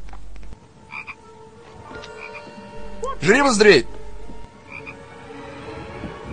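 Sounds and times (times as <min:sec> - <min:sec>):
low hiss: 0:00.0 - 0:06.3
toad croaking in short bright double trills: 0:00.9 - 0:01.2, 0:02.2 - 0:05.0
speech: 0:03.2 - 0:04.0.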